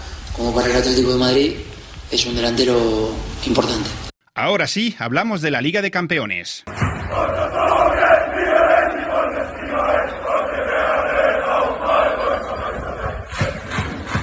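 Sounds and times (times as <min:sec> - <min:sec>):
speech: 0:00.4 - 0:07.4
large crowd of football fans chanting in a city square: 0:06.7 - 0:14.2.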